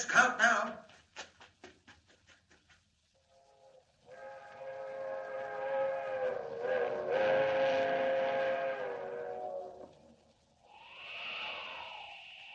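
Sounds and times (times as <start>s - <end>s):
steam-style train whistle: 4.1s - 10.2s.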